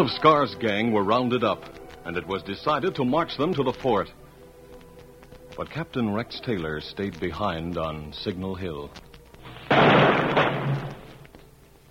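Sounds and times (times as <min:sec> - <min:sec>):
speech: 0:00.0 - 0:04.2, 0:05.6 - 0:09.0
rifle volley fired over a soldier's grave at a burial: 0:09.6 - 0:11.2.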